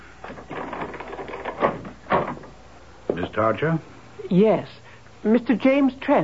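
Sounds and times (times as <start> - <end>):
shuffling rattle of handling a front door: 0.2 - 2.6
speech: 3.4 - 6.2.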